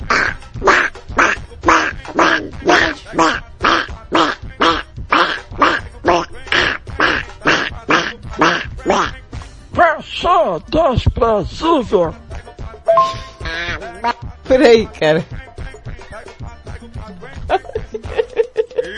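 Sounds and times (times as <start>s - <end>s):
person imitating duck quacks: 0.0s - 9.2s, 13.0s - 14.2s
speech: 10.6s - 12.2s, 14.5s - 15.3s
laughter: 17.2s - 18.9s.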